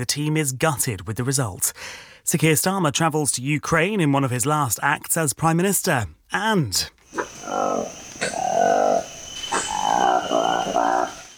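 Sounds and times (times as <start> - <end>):
speech: 0.0 - 9.1
insect-like hiss: 7.1 - 11.3
newly discovered monkey species calling: 7.1 - 11.3.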